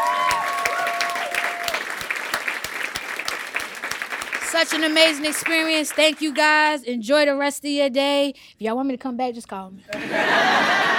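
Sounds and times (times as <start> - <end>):
crowd applauding a band: 0.0 - 6.6
speech: 4.5 - 10.9
laughter: 9.9 - 10.9.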